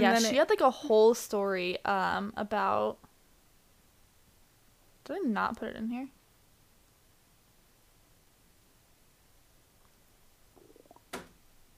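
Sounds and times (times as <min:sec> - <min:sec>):
speech: 0:00.0 - 0:03.1, 0:05.1 - 0:06.2
faint steady hiss: 0:00.0 - 0:11.7
quiet stomach rumble gurgling: 0:10.5 - 0:11.2.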